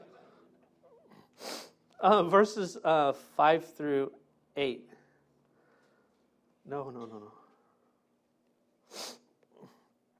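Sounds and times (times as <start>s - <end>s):
person sniffling: 1.0s - 1.8s, 8.9s - 10.0s
speech: 2.0s - 4.9s, 6.7s - 7.4s.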